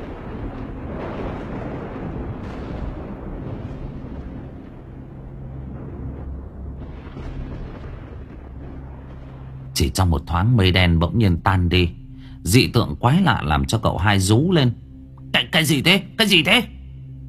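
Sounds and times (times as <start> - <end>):
lightning strike bursting a paper effigy apart in midair: 0.0 - 9.8
speech: 9.8 - 16.8.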